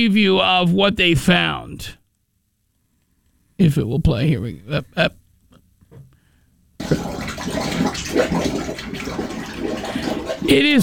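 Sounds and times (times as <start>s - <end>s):
speech: 0.0s - 2.0s, 3.6s - 5.2s, 6.8s - 10.8s
water rushing and splashing up through a cruise cabin shower drain: 6.8s - 10.8s.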